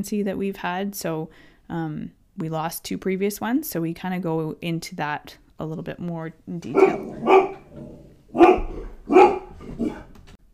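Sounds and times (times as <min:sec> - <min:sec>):
speech: 0:00.0 - 0:07.5
dog barking at the doorbell: 0:06.7 - 0:10.1.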